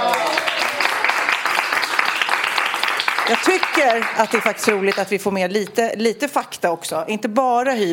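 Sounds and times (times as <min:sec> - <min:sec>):
small crowd applauding: 0:00.0 - 0:05.1
speech: 0:03.3 - 0:07.9.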